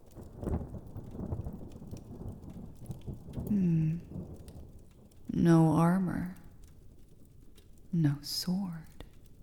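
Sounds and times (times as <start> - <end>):
low thunder rumbling: 0.0 - 8.4
heavy rain pouring in a thunderstorm: 0.0 - 9.4
speech: 5.4 - 6.3, 8.2 - 8.8.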